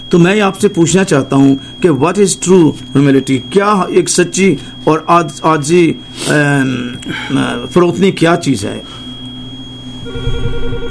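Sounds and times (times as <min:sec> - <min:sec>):
speech: 0:00.1 - 0:09.0
telephone ringing with a steady electronic tone: 0:10.0 - 0:10.8.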